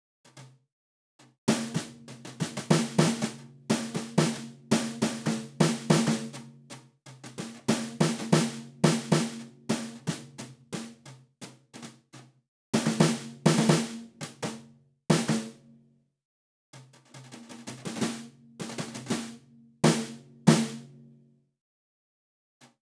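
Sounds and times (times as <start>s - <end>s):
brushes on 14 inch rock snare drum: 1.2s - 14.5s, 16.8s - 19.3s.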